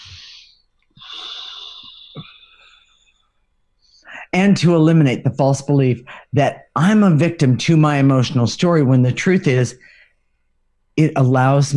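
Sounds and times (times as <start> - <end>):
people breathing during a guided group breathing exercise: 0.0 - 3.1
speech: 4.4 - 9.9, 11.0 - 11.7.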